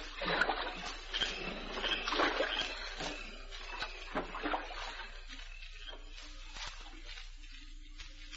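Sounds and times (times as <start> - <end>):
boat being paddled through water in a thicket: 0.0 - 6.0.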